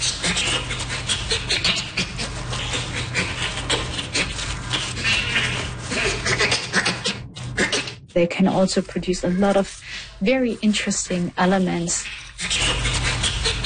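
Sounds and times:
bonobo panting laughter voiced on in-breath and out-breath: 0.0 - 8.0, 12.1 - 13.6
faint low hum: 0.0 - 13.6
speech: 8.2 - 12.2.

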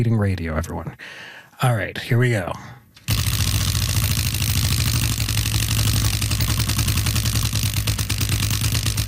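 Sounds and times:
speech: 0.0 - 2.8
prize wheel spinning with ratcheting clatter: 3.1 - 9.0.

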